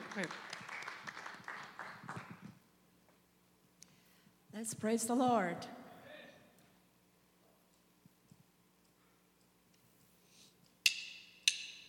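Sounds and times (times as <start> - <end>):
audience clapping: 0.0 - 2.6
speech: 0.2 - 0.5, 4.6 - 5.8.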